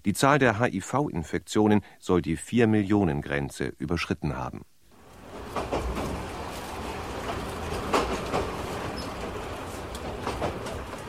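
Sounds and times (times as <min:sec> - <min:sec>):
speech: 0:00.0 - 0:04.7
passenger train on a circle line rolling with rumble and rattle: 0:05.0 - 0:11.0.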